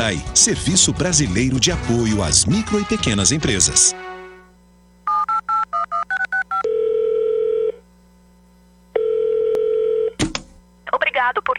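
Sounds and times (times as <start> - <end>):
speech: 0.0 - 4.2
telephone ring tones: 5.1 - 7.8, 9.0 - 10.2.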